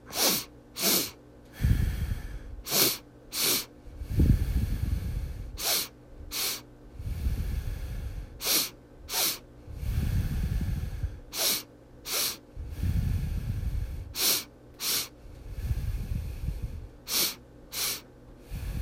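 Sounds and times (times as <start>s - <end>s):
breathing in and out through the nose during a guided breathing exercise: 0.0s - 18.8s.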